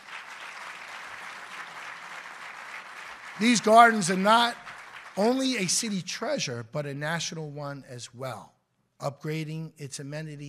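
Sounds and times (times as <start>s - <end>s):
audience applause: 0.0s - 6.0s
speech: 3.4s - 4.6s, 5.2s - 10.4s.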